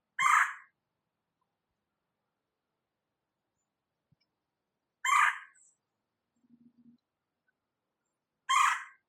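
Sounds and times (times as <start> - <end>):
Red-bellied Woodpecker: 0.2 - 0.7, 8.5 - 9.0.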